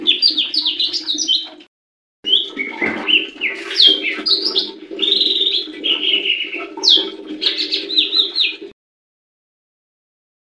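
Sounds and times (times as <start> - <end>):
leafbird singing a warbling run of whistles: 0.0 - 1.6, 2.3 - 8.6.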